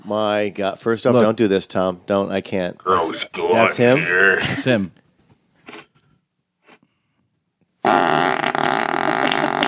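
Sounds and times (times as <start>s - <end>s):
speech: 0.1s - 5.0s, 7.8s - 8.7s
farting: 7.8s - 9.6s.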